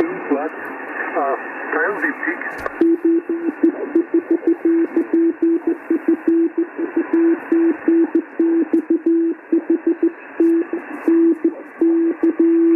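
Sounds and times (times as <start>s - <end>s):
constant hiss of amateur radio band noise: 0.0s - 12.7s
speech: 1.2s - 5.1s
Morse code CW tone over amateur radio: 2.8s - 12.7s.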